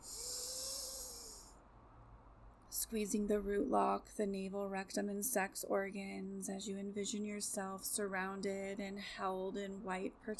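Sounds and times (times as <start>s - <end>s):
deep inhale during a pranic breathing exercise: 0.0s - 1.6s
speech: 2.8s - 10.3s.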